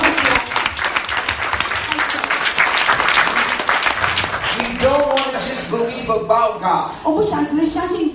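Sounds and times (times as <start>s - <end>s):
large standing group applauding: 0.0s - 6.0s
speech: 6.1s - 8.1s.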